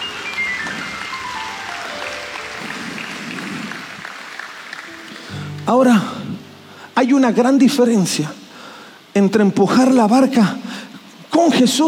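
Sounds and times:
crowd applauding: 0.0 - 6.4
speech: 5.7 - 6.2, 7.0 - 8.4, 9.2 - 10.6, 11.4 - 11.8.

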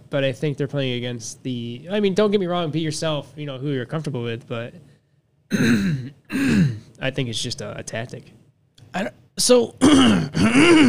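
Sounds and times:
speech: 0.1 - 4.9, 5.5 - 10.8
throat clearing to dislodge phlegm: 5.5 - 6.9, 9.8 - 10.8.

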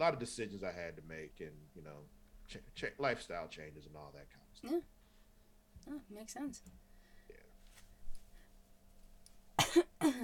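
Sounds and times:
speech: 0.0 - 5.0, 5.8 - 7.4, 10.0 - 10.2
faint hum: 0.0 - 10.2
single sharp cough: 9.6 - 10.2.

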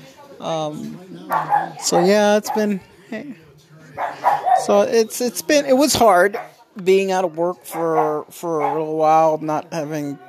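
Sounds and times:
speech: 0.4 - 10.2
dogs barking: 1.2 - 2.8, 4.0 - 4.9, 6.2 - 6.6, 7.6 - 9.2.

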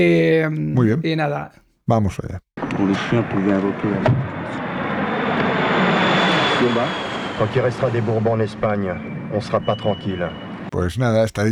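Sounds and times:
speech: 0.0 - 4.7, 6.6 - 11.5
airplane engine roar overhead: 3.0 - 9.6.

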